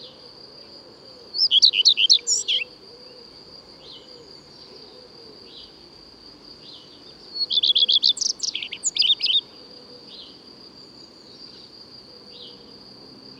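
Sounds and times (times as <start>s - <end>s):
common redstart singing: 1.4s - 2.7s, 6.8s - 9.4s.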